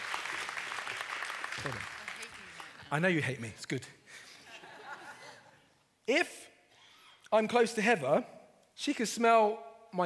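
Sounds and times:
audience applause: 0:00.0 - 0:03.3
speech: 0:01.6 - 0:02.0, 0:02.9 - 0:04.2, 0:06.1 - 0:06.5, 0:07.3 - 0:10.0
laughter: 0:04.2 - 0:05.6.

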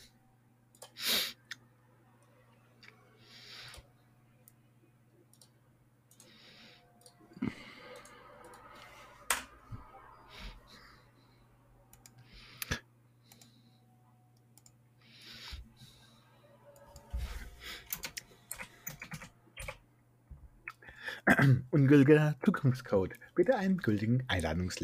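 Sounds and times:
low steady hum: 0:00.0 - 0:24.8
typing on a computer keyboard: 0:17.8 - 0:19.8
speech: 0:21.4 - 0:24.8.

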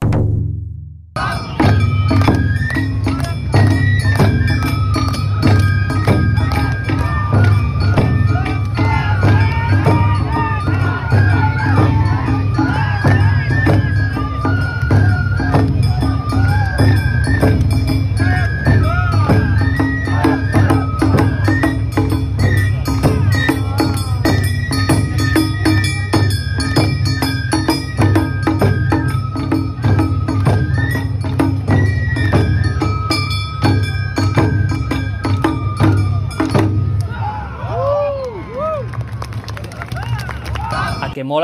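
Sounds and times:
Awa Odori festival drums playing rhythm: 0:00.0 - 0:37.0
crowd chanting and shouting along to Awa Odori festival music: 0:01.2 - 0:26.1, 0:39.6 - 0:41.4
Awa Odori festival bells: 0:01.2 - 0:37.4, 0:40.1 - 0:41.4
Awa Odori festival flute melody: 0:01.2 - 0:41.2.

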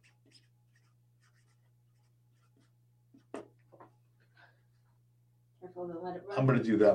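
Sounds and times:
pen scratching across paper writing a name: 0:00.0 - 0:02.7
steady low electrical hum: 0:00.0 - 0:06.9
speech: 0:05.8 - 0:06.9.

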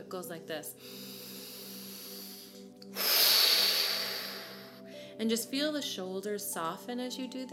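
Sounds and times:
speech: 0:00.0 - 0:01.2, 0:05.2 - 0:07.5
forceful breath pushed out close to the microphone: 0:00.8 - 0:04.8
deep nasal inhale: 0:00.8 - 0:05.2.

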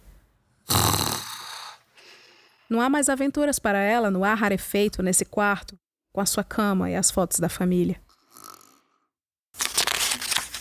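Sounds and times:
woman breathing heavily while asleep and dreaming: 0:00.7 - 0:02.7
speech: 0:02.7 - 0:08.1.

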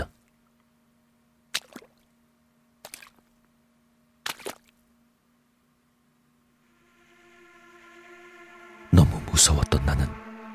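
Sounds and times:
low steady hum: 0:00.0 - 0:10.5
wet squelching footsteps across a waterlogged room floor: 0:01.5 - 0:02.0, 0:02.8 - 0:03.4, 0:04.2 - 0:04.8
eerie droning tone: 0:06.5 - 0:10.5
speech: 0:09.0 - 0:10.2.

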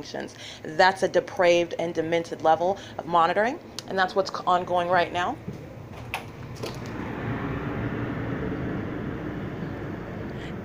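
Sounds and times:
speech: 0:00.0 - 0:05.6
airplane flying overhead: 0:05.4 - 0:10.6.

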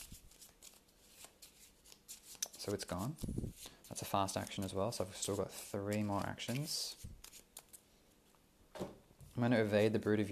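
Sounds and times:
playing cards being shuffled into an encounter deck during a card game: 0:00.0 - 0:07.8
speech: 0:02.6 - 0:07.2, 0:09.4 - 0:10.3.

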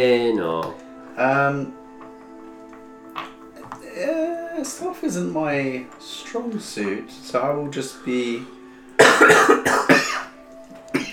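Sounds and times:
speech: 0:00.0 - 0:01.8, 0:04.0 - 0:08.6, 0:09.2 - 0:10.0
harsh coughs: 0:09.0 - 0:10.3, 0:10.9 - 0:11.1.

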